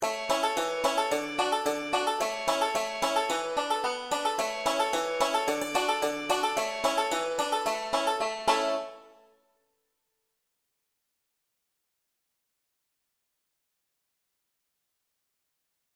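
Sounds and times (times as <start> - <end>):
five-string banjo: 0.0 - 9.3
accordion melody in the key of A: 0.0 - 9.4.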